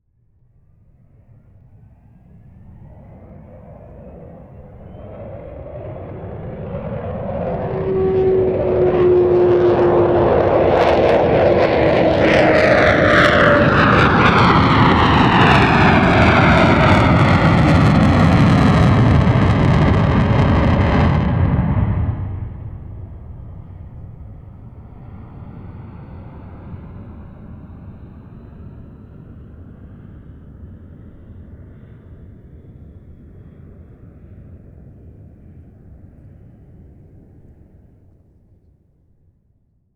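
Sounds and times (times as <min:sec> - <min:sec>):
Avro Vulcan bomber aircraft flying overhead: 0:00.7 - 0:38.0.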